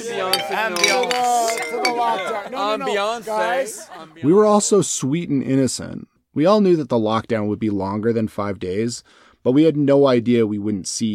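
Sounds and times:
beer glasses clinking in a toast: 0.0 - 2.5
people laughing: 0.0 - 4.5
speech: 0.0 - 11.1.

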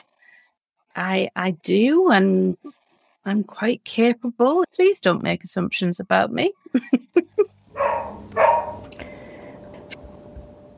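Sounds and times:
speech: 1.0 - 8.6
cockapoo barking: 7.8 - 8.8.

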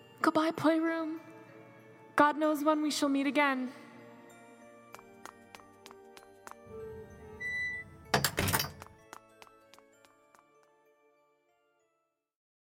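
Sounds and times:
speech: 0.2 - 1.3, 2.2 - 3.8
side door sliding open with a low rumbling scrape: 6.9 - 8.9
side door shutting with a loud thump: 7.7 - 8.9.

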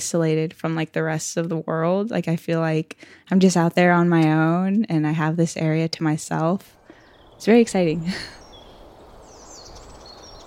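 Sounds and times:
speech: 0.0 - 6.8, 7.4 - 8.4
birds whistling and chirping outdoors: 8.1 - 10.4.

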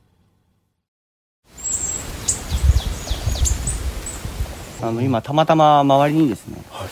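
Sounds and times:
mixed flock of small tits calling: 1.5 - 5.0
speech: 4.8 - 6.9.

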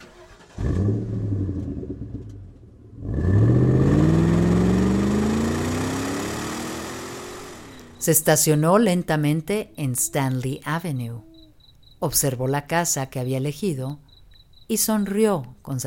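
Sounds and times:
Toyota car engine cranking, idling and accelerating away: 0.0 - 8.6
speech: 0.6 - 1.2, 8.0 - 11.3, 12.0 - 14.0, 14.7 - 15.8.

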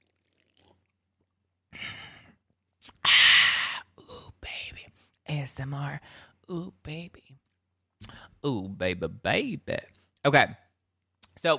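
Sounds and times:
person sipping and swallowing rosé wine: 0.0 - 3.8
speech: 5.3 - 10.6, 11.4 - 11.5.

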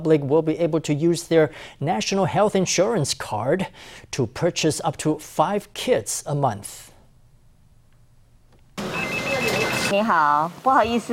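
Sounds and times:
speech: 0.0 - 6.9, 9.9 - 11.1
busy noise: 8.8 - 10.0
telephone ringing at a pharmacy: 8.8 - 10.0.

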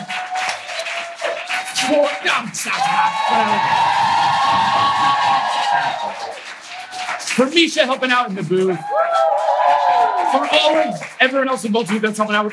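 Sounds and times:
people shouting: 0.0 - 7.2, 8.7 - 11.0
whoops and cheers: 0.0 - 7.2, 8.7 - 11.0
crowd applauding: 0.0 - 12.5
speech: 1.8 - 6.5, 7.3 - 9.0, 10.3 - 12.5.

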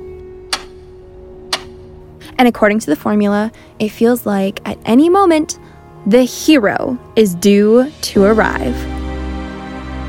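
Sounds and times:
clock ticking: 0.5 - 0.9, 1.5 - 1.8
speech: 2.4 - 8.9.

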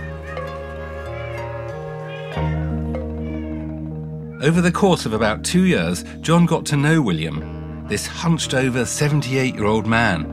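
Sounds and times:
several house cats meowing: 0.0 - 4.5
speech: 4.4 - 10.3.

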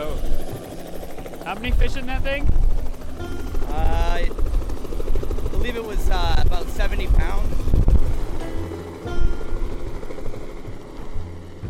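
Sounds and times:
helicopter rotor droning with low pulsing thump: 0.0 - 11.6
speech: 1.5 - 2.6, 3.2 - 4.6, 5.6 - 7.8.

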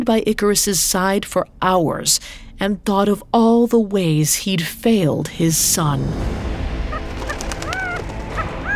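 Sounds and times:
speech: 0.0 - 6.6
partridge giving raspy calls: 7.2 - 8.7.

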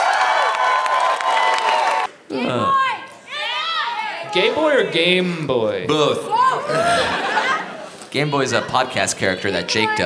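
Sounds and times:
live audience clapping and cheering loudly: 0.0 - 2.2
speech: 2.3 - 2.8, 4.4 - 7.3, 8.1 - 10.0
laughter: 6.5 - 8.0.

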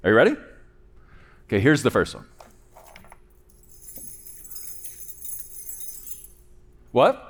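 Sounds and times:
speech: 0.0 - 0.5, 1.5 - 2.4, 6.9 - 7.2
bunch of keys jangling: 2.7 - 6.6.

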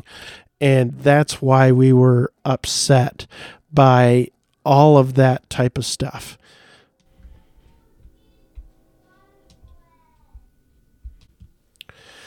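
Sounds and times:
speech: 0.1 - 6.6
soft low thumps: 7.1 - 11.6
child singing in another room: 7.2 - 10.5.

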